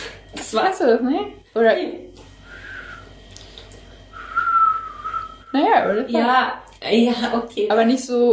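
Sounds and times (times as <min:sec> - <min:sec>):
speech: 0:00.5 - 0:02.2, 0:05.5 - 0:08.3
person whistling badly: 0:02.5 - 0:03.1, 0:04.1 - 0:05.5.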